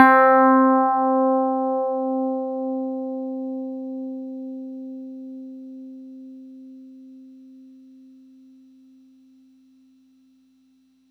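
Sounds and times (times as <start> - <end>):
FM tine note C4 on Yamaha YX81Z synthesizer: 0.0 - 2.2.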